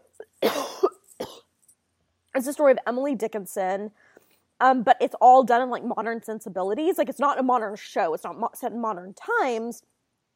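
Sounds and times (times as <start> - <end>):
person coughing: 0.2 - 1.5
speech: 2.4 - 9.9.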